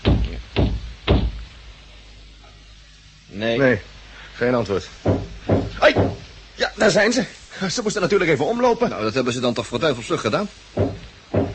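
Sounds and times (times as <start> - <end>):
knocking on a wooden cabin wall: 0.0 - 1.4, 5.0 - 6.2, 10.8 - 11.5
speech: 3.4 - 5.3, 5.9 - 11.0.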